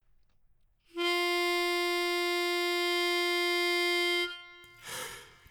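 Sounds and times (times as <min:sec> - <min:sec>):
bass playing a Christmas tune in mono: 0:01.0 - 0:04.8.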